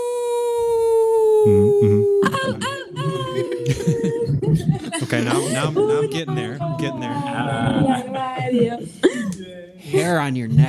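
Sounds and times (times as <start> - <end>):
person imitating a wolf howl: 0.0 - 8.5
people chattering: 1.3 - 10.6
speech: 1.4 - 9.3, 9.9 - 10.6
people laughing: 1.5 - 9.4.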